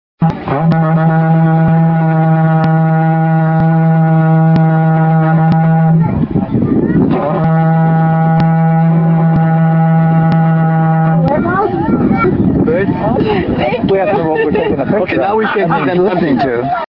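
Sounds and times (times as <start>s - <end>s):
horn in Africa: 0.2s - 6.4s, 7.1s - 11.7s
laughter: 11.5s - 16.8s.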